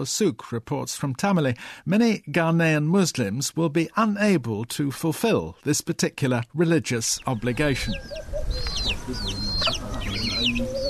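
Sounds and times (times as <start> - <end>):
speech: 0.0 - 9.3
steady low outdoor noise: 0.0 - 10.8
flock of chickens clucking while being fed grain: 7.1 - 10.8.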